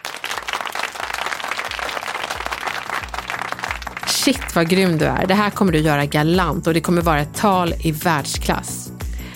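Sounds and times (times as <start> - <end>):
audience applause: 0.0 - 5.4
speech: 4.2 - 8.9.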